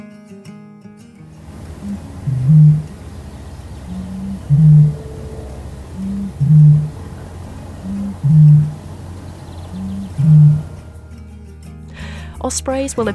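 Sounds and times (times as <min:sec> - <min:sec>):
faint outdoor hiss: 0:01.2 - 0:13.1
Eurasian bittern booming: 0:01.5 - 0:09.0
speech: 0:12.5 - 0:13.1.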